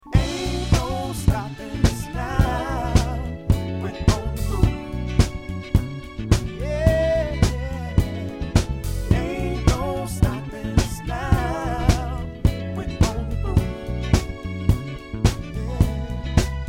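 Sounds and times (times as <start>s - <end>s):
pop band playing: 0.0s - 16.6s.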